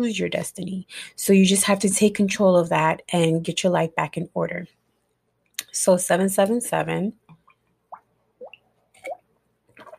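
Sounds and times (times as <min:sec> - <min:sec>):
speech: 0:00.0 - 0:04.8, 0:05.8 - 0:07.2
water bubbling in a cup: 0:07.9 - 0:09.9.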